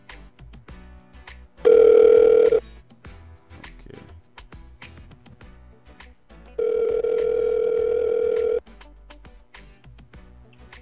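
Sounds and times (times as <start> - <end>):
telephone ringing tone on a phone line: 1.7 - 2.6, 6.6 - 8.6.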